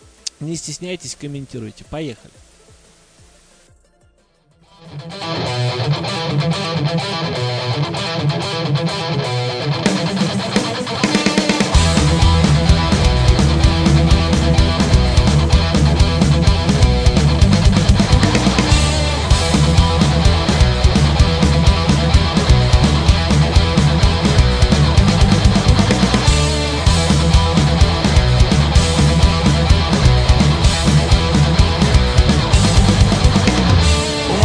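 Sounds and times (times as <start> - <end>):
speech: 0.4 - 2.4
thick heavy rock guitars: 4.6 - 34.4
driving rock drums: 9.9 - 34.4.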